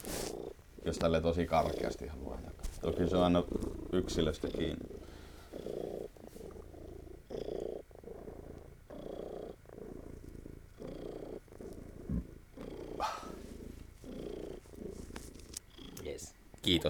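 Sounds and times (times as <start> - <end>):
soft rustles and handling noises: 0.0 - 6.8, 11.4 - 16.8
male cat purring: 0.0 - 16.8
speech: 0.9 - 5.0.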